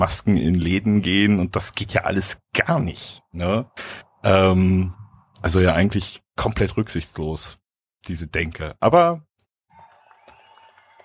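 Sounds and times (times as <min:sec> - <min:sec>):
speech: 0:00.0 - 0:09.3
audience applause: 0:09.7 - 0:11.0.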